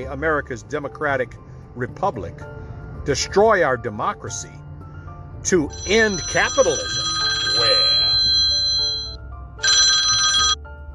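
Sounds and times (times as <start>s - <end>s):
speech: 0.0s - 4.6s, 5.4s - 7.8s
mobile phone ringing while someone is driving: 5.6s - 10.9s.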